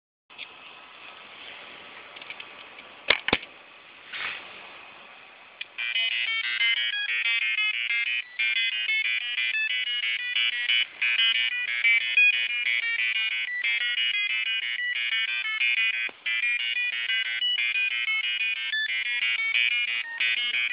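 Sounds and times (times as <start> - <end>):
ATmega microcontroller beeps: 5.8 - 20.7.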